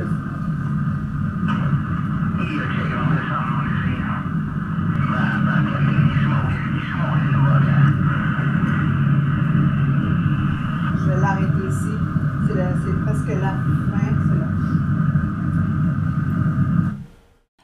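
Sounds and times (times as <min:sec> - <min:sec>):
constant low rumble: 0:00.0 - 0:17.0
steady radio static: 0:00.0 - 0:17.0
warbling garbled radio transmission sounds: 0:01.4 - 0:15.9.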